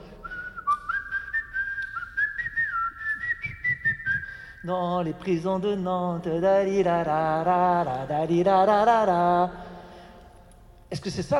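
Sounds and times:
faint noise: 0.0s - 11.3s
person whistling a lively tune: 0.2s - 4.7s
speech: 4.6s - 9.6s, 11.0s - 11.3s.

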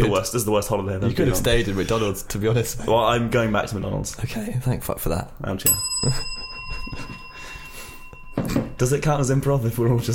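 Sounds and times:
speech: 0.0s - 7.2s, 8.4s - 10.1s
small bell ringing: 5.7s - 10.1s.

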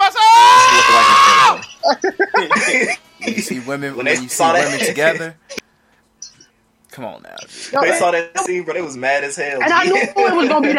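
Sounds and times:
played clip of men yelling: 0.0s - 5.2s, 9.6s - 10.7s
laughter: 0.7s - 5.6s, 9.6s - 10.7s
speech: 1.9s - 5.4s, 7.0s - 10.7s.

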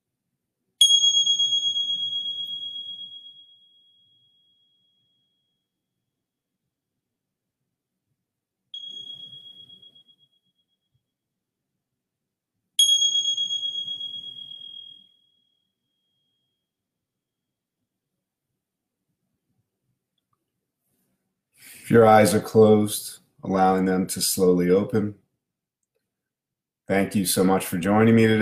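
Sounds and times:
meditation bell ringing: 0.8s - 5.8s, 8.8s - 10.8s, 12.8s - 16.7s
speech: 21.9s - 25.2s, 26.9s - 28.4s.

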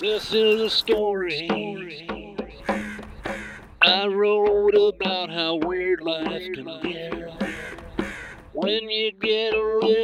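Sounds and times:
speech: 0.0s - 2.1s, 3.9s - 7.2s, 8.6s - 10.0s
distant bird chirps: 0.0s - 4.9s, 6.4s - 8.6s.

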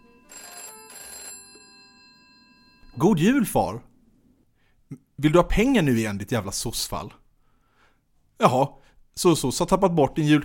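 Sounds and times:
telephone ringing on Christmas Eve: 0.0s - 3.2s
speech: 3.0s - 3.9s, 5.2s - 7.2s, 8.4s - 10.4s.

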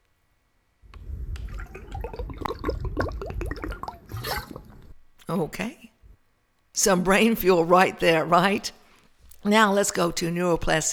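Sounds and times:
person drinking water: 0.9s - 6.2s
speech: 5.3s - 5.9s, 6.8s - 8.8s, 9.4s - 10.9s.

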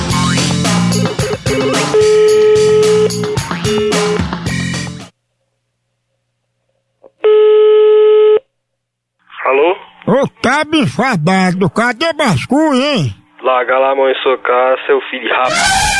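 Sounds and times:
music: 0.0s - 5.1s, 15.4s - 15.9s
steady buzzy electronic tone of a telephone being dialed for a prank call: 1.2s - 4.2s, 7.2s - 8.4s
speech: 10.5s - 15.9s.

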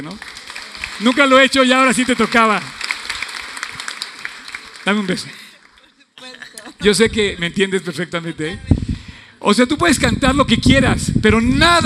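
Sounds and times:
speech: 0.0s - 0.4s, 1.0s - 2.8s, 4.8s - 5.4s, 6.8s - 8.7s, 9.4s - 11.8s
audience applause: 0.0s - 6.0s.

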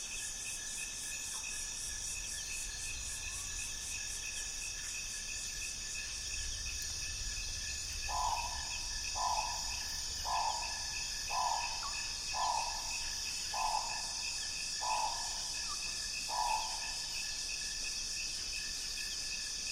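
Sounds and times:
insect chorus at dusk in Mohoba forest, Congo Basin Rainforest: 0.0s - 19.7s
bird calls: 8.1s - 17.1s.

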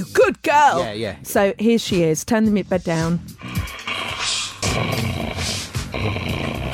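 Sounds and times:
speech: 0.0s - 3.6s, 4.8s - 6.4s
female dog growling and snarling while playing tug-of-war with a ball: 3.4s - 6.7s.

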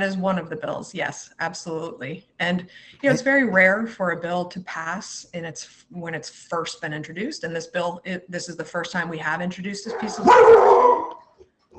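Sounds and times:
speech: 0.0s - 11.0s
dog barking: 9.9s - 11.2s.

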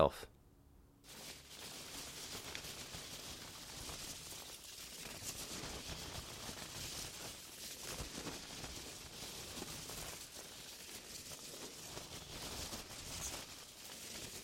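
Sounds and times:
speech: 0.0s - 0.3s
packing peanuts rustling in a cardboard box: 1.0s - 14.4s.

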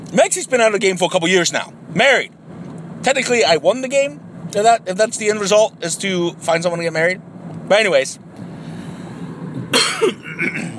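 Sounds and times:
speech: 0.1s - 2.4s, 3.0s - 8.4s, 9.8s - 10.7s
person coughing with a tickle in the throat: 9.7s - 10.7s.

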